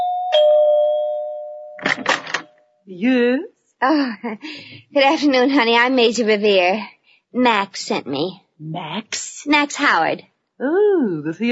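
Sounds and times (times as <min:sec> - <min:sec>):
doorbell chime at the door of a large country home: 0:00.0 - 0:02.8
speech: 0:02.9 - 0:11.4.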